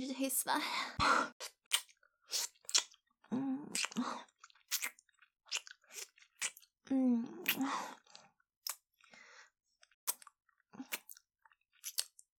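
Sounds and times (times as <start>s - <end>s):
speech: 0.2s - 1.3s
gum chewing: 1.4s - 3.0s, 3.7s - 6.7s, 7.4s - 8.8s, 9.8s - 12.2s.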